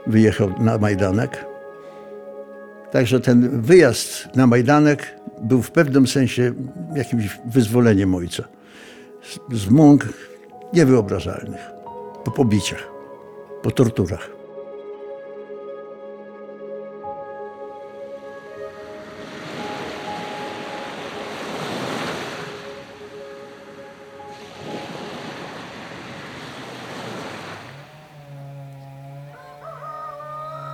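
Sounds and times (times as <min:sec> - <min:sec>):
speech: 0:00.1 - 0:01.5, 0:02.9 - 0:12.9, 0:13.6 - 0:14.4
steady motor drone: 0:26.7 - 0:30.7
saw cutting wood: 0:26.9 - 0:30.7.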